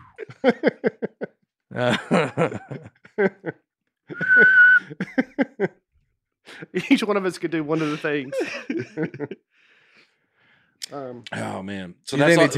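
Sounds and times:
snickering laughter: 0.0 - 5.8, 6.5 - 9.4
speech: 0.2 - 1.0, 1.8 - 2.2, 7.1 - 9.4, 11.2 - 12.5
person whistling a steady note: 4.1 - 5.0.

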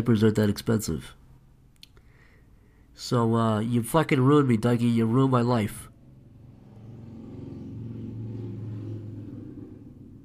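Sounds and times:
speech: 0.0 - 1.2, 3.0 - 5.9
loud motorcycle engine revving: 6.0 - 10.2.

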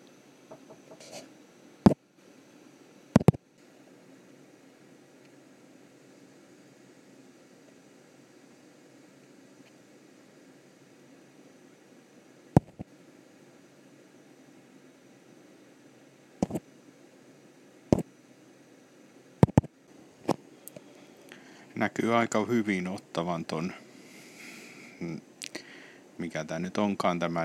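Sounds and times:
ship cabin ventilation hissing loudly: 0.0 - 27.4
sharp clicks: 3.2 - 3.4, 12.6 - 12.8, 19.4 - 19.7
speech: 21.8 - 23.8, 26.3 - 27.4.

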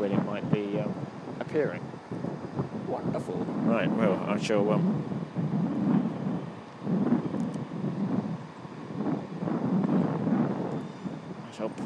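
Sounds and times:
strong wind gusting through a railway station: 0.0 - 11.8
speech: 1.5 - 2.4, 3.8 - 5.2.

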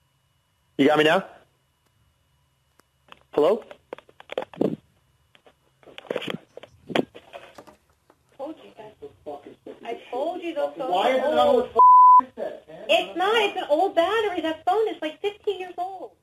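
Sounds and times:
speech: 0.8 - 1.4, 3.4 - 3.8, 8.5 - 16.2
old phone low-battery warning beep: 11.8 - 12.2.

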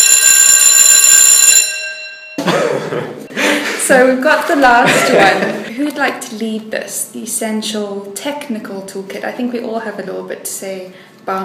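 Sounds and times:
loud electronic bell ringing to signal time: 0.0 - 3.5
laughter: 2.4 - 5.8
speech: 3.9 - 11.4.

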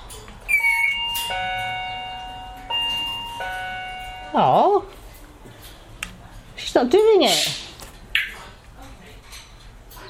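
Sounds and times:
doorbell chiming with clear ringing tones: 0.5 - 4.8
speech: 4.3 - 5.0, 6.8 - 7.6.

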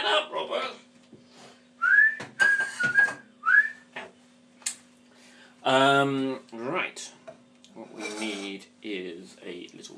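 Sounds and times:
shrill piercing human whistling: 1.8 - 3.9
speech: 5.7 - 7.2.

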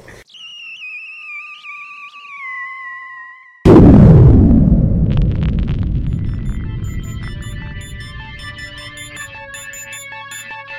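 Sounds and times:
loud explosion with deep rolling rumble: 3.7 - 9.2
short steady electronic tone: 4.7 - 10.5.

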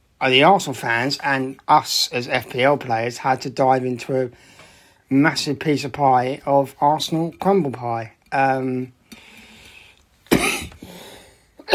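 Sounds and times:
speech: 0.2 - 9.3
rasping breath: 9.0 - 10.1, 10.8 - 11.6
sharp harsh coughs: 10.3 - 10.9, 11.6 - 11.7.

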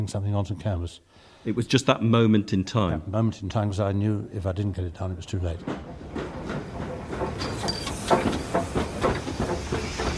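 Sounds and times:
speech: 0.0 - 6.0
steam locomotive hissing at the Gloucestershire and Warwickshire Railway heritage railway: 6.0 - 10.1.

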